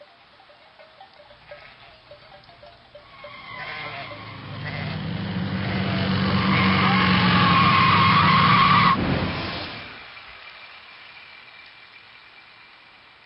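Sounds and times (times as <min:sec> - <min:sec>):
car skidding on a wet road in the rain with failed brakes: 0:03.1 - 0:10.2.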